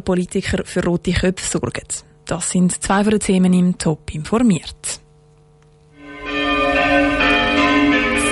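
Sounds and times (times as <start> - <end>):
speech: 0.0 - 5.0
church bells ringing in church towers during the coronavirus crisis: 6.0 - 8.3.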